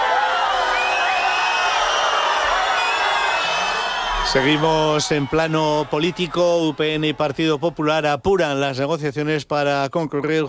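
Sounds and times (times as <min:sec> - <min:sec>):
large outdoor crowd booing and shouting at an official event: 0:00.0 - 0:08.2
scattered whistles: 0:00.6 - 0:05.2
speech: 0:04.3 - 0:10.4.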